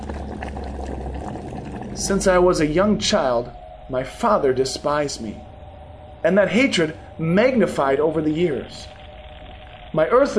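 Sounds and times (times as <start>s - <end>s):
liquid boiling in a pot: 0.0s - 3.2s
speech: 2.0s - 5.5s, 6.2s - 9.0s, 9.9s - 10.3s.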